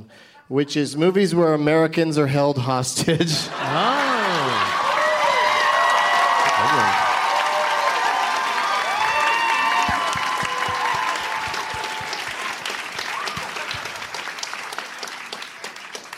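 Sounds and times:
speech: 0.1s - 4.0s
laughter: 3.0s - 4.9s
room full of people applauding: 3.5s - 16.1s.

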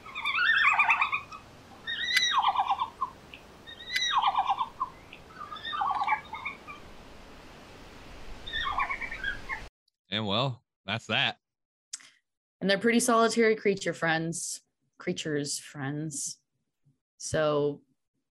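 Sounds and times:
red panda squeaky twittering chirps: 0.0s - 6.8s, 8.4s - 9.7s
speech: 10.2s - 11.4s, 12.6s - 16.4s, 17.2s - 17.9s.

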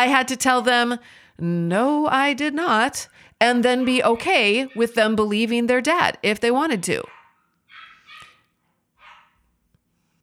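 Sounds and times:
speech: 0.0s - 7.2s
small Morkie dogs barking: 3.5s - 5.2s, 7.0s - 9.5s.

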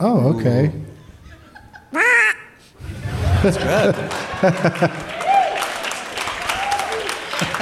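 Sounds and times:
speech: 0.0s - 0.8s, 3.4s - 5.1s
laughter: 1.0s - 6.1s, 7.2s - 7.5s
person imitating a duck quack: 1.9s - 2.6s.

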